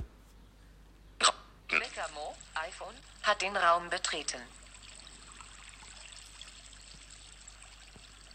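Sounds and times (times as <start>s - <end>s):
water trickling from a village fountain: 1.7s - 8.3s
speech: 2.6s - 4.6s.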